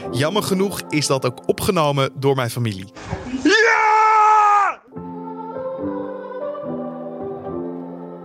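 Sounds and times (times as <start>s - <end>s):
speech: 0.1s - 3.8s
person screaming with excitement in front of the television: 3.4s - 4.9s.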